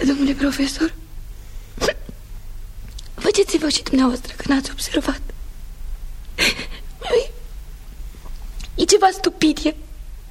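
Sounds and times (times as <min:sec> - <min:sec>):
speech: 0:00.0 - 0:01.1, 0:03.4 - 0:05.4, 0:08.8 - 0:09.8
hum: 0:00.0 - 0:10.3
woman crying softly: 0:06.4 - 0:07.4.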